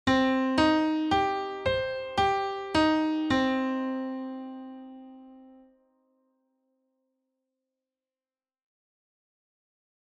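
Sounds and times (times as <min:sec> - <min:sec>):
minor chord arpeggio: 0:00.1 - 0:05.8.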